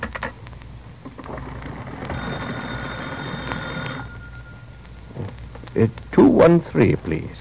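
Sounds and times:
old wall telephone metallic bell ringing: 0:01.7 - 0:05.2
speech: 0:05.8 - 0:07.3.

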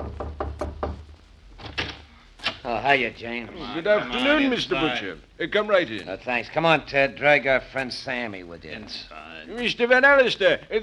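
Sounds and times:
knocking on a door: 0:00.0 - 0:01.9
speech: 0:02.7 - 0:10.8.

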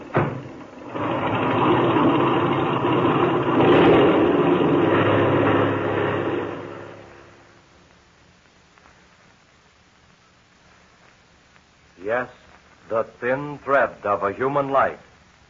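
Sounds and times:
small airplane engine revving for takeoff: 0:00.8 - 0:07.4
speech: 0:13.2 - 0:15.4.

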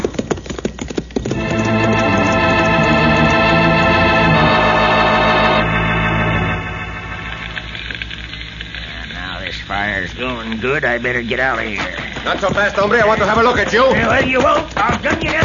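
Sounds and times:
horse galloping: 0:00.0 - 0:04.6, 0:11.4 - 0:15.4
loud sustained musical chord: 0:01.3 - 0:08.3
speech: 0:10.5 - 0:15.4.

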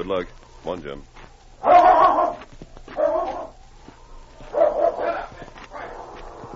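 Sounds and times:
speech: 0:00.0 - 0:01.2
big strong dog barking and growling: 0:01.6 - 0:03.6, 0:04.4 - 0:06.5.

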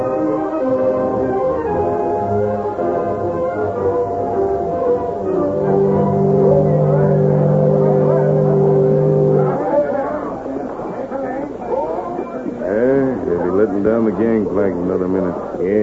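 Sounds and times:
voices and bustle at a river landing: 0:00.1 - 0:15.8
riverboat horn drone at a river landing: 0:01.3 - 0:10.3
riverboat engine rumble: 0:03.9 - 0:13.3.

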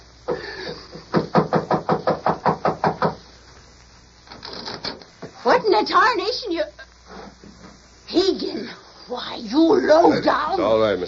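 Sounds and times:
sharp knocks on a wooden door: 0:01.4 - 0:03.2
speech: 0:05.8 - 0:06.8, 0:08.1 - 0:11.0.

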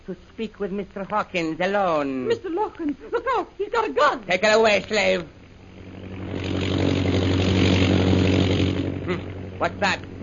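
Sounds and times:
speech: 0:00.1 - 0:05.4, 0:09.1 - 0:10.1
British propeller plane engine droning overhead: 0:04.2 - 0:10.2.

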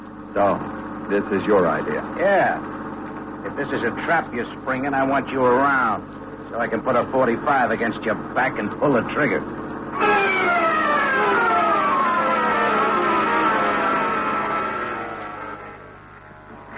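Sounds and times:
speech: 0:00.4 - 0:02.7, 0:03.4 - 0:10.1
Coast Guard boat siren wailing: 0:09.9 - 0:16.4.

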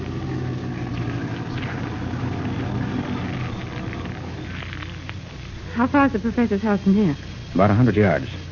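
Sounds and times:
branches and brush crackling and rustling against a car: 0:00.0 - 0:05.7
car engine rumbling while driving off road: 0:00.0 - 0:06.5
speech: 0:05.8 - 0:08.4.

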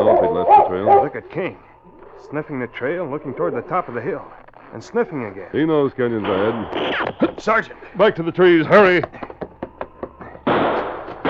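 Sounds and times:
speech: 0:00.8 - 0:09.3
burst of dense noise: 0:01.1 - 0:08.7
rifle shots fired from a hillside: 0:10.5 - 0:11.2.

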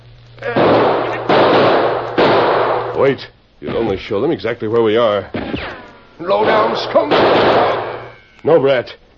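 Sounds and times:
low steady hum: 0:00.0 - 0:09.1
speech: 0:00.4 - 0:00.7, 0:03.0 - 0:05.6, 0:06.2 - 0:07.8, 0:08.4 - 0:09.0
gunshots fired across a canyon: 0:00.5 - 0:03.0, 0:05.3 - 0:08.2.

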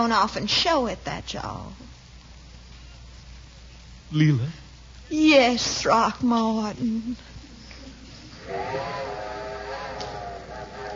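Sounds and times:
speech: 0:00.0 - 0:01.9, 0:04.1 - 0:07.3
steam train whistle: 0:08.4 - 0:10.9.

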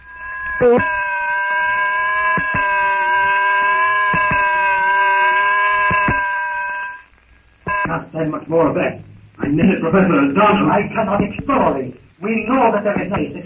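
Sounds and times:
weird unearthly shriek: 0:00.0 - 0:07.2
speech: 0:00.6 - 0:01.0, 0:08.2 - 0:13.4.

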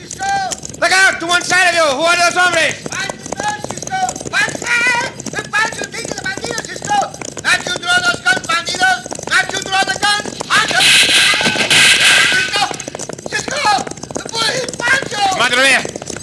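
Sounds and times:
galloping horses with riders: 0:00.0 - 0:16.2
hooves of a stampeding cattle herd: 0:00.0 - 0:16.2
speech: 0:01.9 - 0:03.1
people shouting: 0:10.5 - 0:12.9.

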